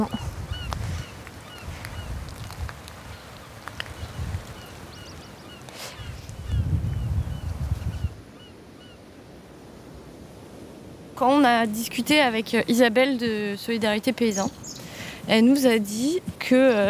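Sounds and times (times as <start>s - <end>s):
flock of small and larger gulls calling: 0.0s - 6.7s, 11.2s - 16.8s
low rumbling wind-like background: 0.0s - 16.8s
speech: 11.2s - 14.7s, 15.3s - 16.8s.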